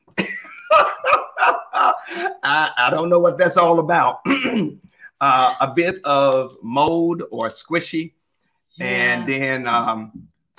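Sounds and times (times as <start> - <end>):
laughter: 0.2 - 2.5
speech: 2.5 - 8.2, 8.8 - 10.5
person coughing harshly: 4.2 - 5.6.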